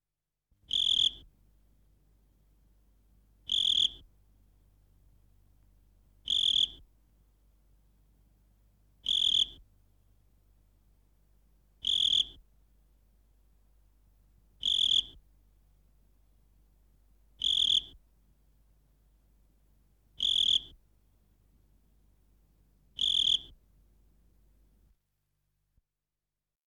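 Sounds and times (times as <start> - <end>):
cricket chirping: 0.7 - 1.3, 3.5 - 4.0, 6.2 - 6.8, 9.0 - 9.6, 11.8 - 12.4, 14.6 - 15.2, 17.4 - 17.9, 20.2 - 20.7, 23.0 - 23.6.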